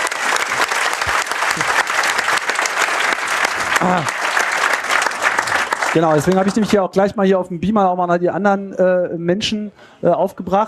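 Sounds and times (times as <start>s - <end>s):
many hands of an audience clapping: 0.0s - 6.8s
speech: 3.8s - 4.2s, 6.0s - 10.6s.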